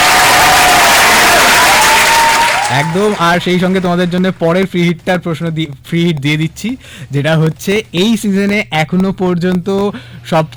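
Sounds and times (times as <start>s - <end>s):
audience applause during a cricket quiz: 0.0s - 3.8s
speech: 2.8s - 10.5s.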